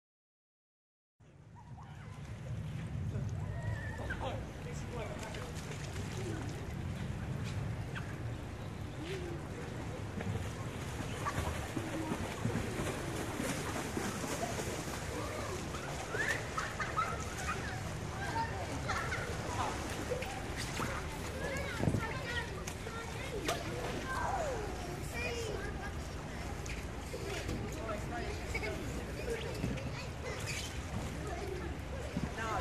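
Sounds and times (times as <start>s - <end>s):
open air swimming pool ambience: 1.2s - 32.5s.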